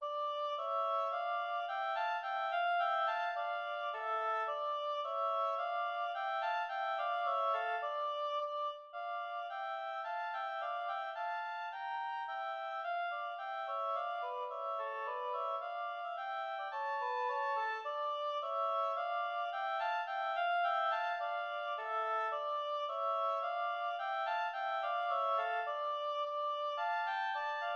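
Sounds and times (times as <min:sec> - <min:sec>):
two oboes playing a tambourin: 0:00.0 - 0:27.7.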